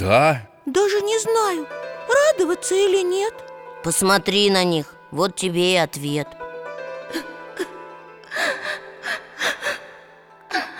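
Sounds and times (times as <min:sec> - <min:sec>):
speech: 0:00.0 - 0:06.4, 0:07.1 - 0:07.7
woman sobbing with gasping breaths and whimpering cries: 0:07.1 - 0:09.9.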